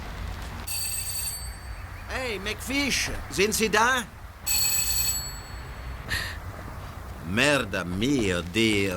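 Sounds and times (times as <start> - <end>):
bright electronic doorbell at a front door ringing: 0.7 - 1.8, 4.4 - 5.9
speech: 2.2 - 4.6, 7.3 - 8.9.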